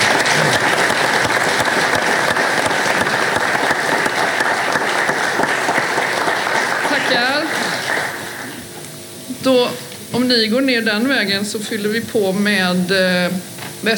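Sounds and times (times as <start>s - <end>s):
audience applause: 0.0s - 8.8s
speech: 9.5s - 13.9s.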